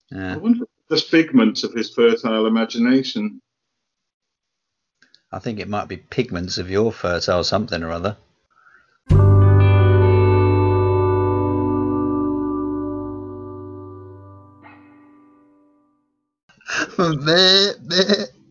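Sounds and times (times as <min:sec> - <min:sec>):
speech: 0:00.1 - 0:03.4, 0:05.3 - 0:08.3, 0:09.1 - 0:09.3, 0:17.0 - 0:18.2
long ringing musical tone: 0:09.1 - 0:15.3.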